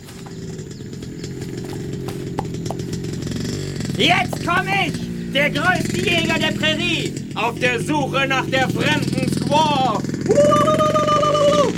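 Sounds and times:
horse hooves clip-clopping: 0.0s - 5.1s
continuous low motor-like drone: 0.0s - 7.2s
speech: 4.0s - 10.9s.

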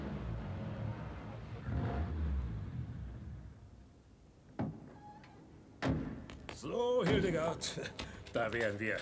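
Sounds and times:
car engine rumbling driving into an underground garage: 0.0s - 4.6s
speech: 6.6s - 9.0s.

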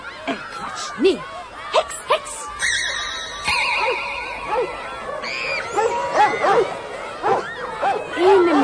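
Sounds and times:
speech: 0.7s - 1.4s
several small dogs barking and yipping: 2.6s - 8.6s.

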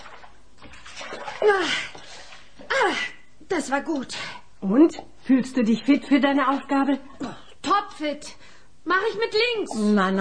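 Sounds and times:
cold water sloshing and splashing from a bowl: 0.0s - 2.8s
speech: 1.4s - 2.0s, 2.8s - 10.1s.

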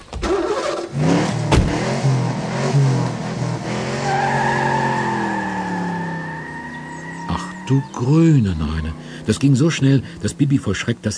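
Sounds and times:
car engine revving as it accelerates off: 0.3s - 10.9s
car tires squealing: 2.7s - 10.4s
speech: 7.7s - 11.1s.

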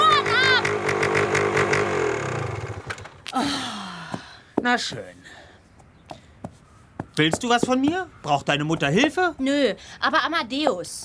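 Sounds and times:
small engine running: 0.0s - 3.2s
speech: 4.6s - 5.2s, 7.2s - 11.0s.

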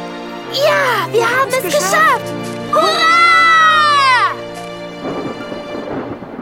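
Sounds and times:
speech: 0.5s - 3.2s
steady rain: 1.8s - 6.4s
rumbling thunder: 3.4s - 6.4s.

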